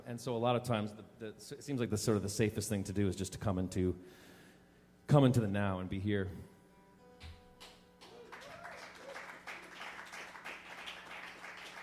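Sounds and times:
speech: 0.1s - 4.3s, 5.1s - 6.5s
crowd applause: 7.6s - 11.8s.

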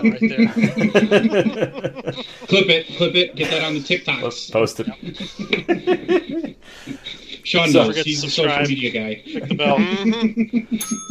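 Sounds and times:
laughter: 0.0s - 10.8s
speech: 0.0s - 11.0s
voices murmuring: 0.0s - 11.0s
bicycle bell ringing: 10.8s - 11.0s.

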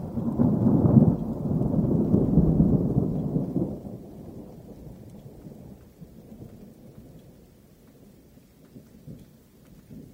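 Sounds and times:
distant thunder rumbling: 0.0s - 7.6s
soft rain patter: 0.0s - 10.1s.

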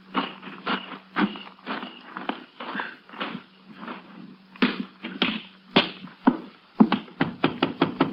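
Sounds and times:
faint low hum: 0.0s - 8.1s
knocking sharply on the front door of a house: 6.3s - 8.1s.

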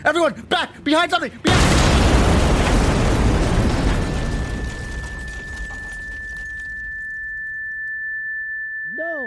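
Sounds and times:
speech: 0.0s - 2.4s
grenade explosion: 1.5s - 6.7s
high steady ringing tone: 4.4s - 9.2s.

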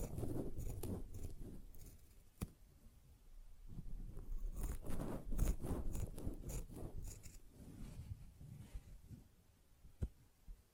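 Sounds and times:
sponge scratching, squishing and cutting strokes: 0.0s - 2.2s, 4.1s - 9.0s.

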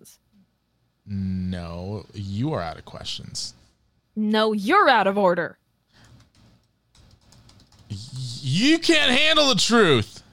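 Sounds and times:
speech: 0.0s - 0.2s, 1.1s - 3.6s, 4.2s - 5.6s, 7.9s - 10.2s
typing on a computer keyboard: 6.0s - 8.5s.

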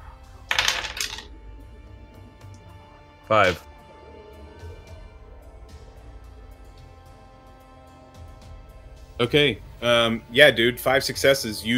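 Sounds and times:
dice rolled on a hard table for a flight check: 0.5s - 1.3s
speech: 3.3s - 3.7s, 9.2s - 11.7s.

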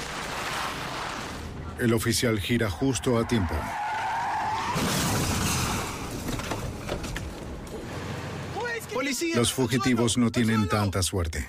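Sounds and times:
loud crunching car crash during a police chase in Santa Fe: 0.0s - 1.8s, 4.0s - 8.7s
rumbling debris noise: 0.0s - 2.2s, 4.7s - 8.6s
speech: 1.8s - 3.8s, 9.2s - 11.4s
fugitives' car tires squealing in a skid during a police chase in Santa Fe: 2.8s - 6.1s.

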